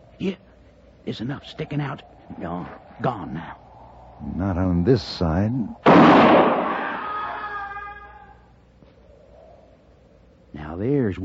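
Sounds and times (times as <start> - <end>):
speech: 0.2 - 3.6, 4.2 - 6.5, 10.8 - 11.2
single sharp gunshot in a frontier shootout: 5.8 - 7.0.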